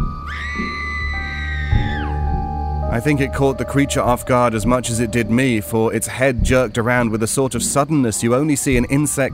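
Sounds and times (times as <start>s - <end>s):
distant shrill scream down the street: 0.0s - 6.4s
low steady ambient rumble: 0.4s - 7.4s
speech: 2.9s - 9.3s.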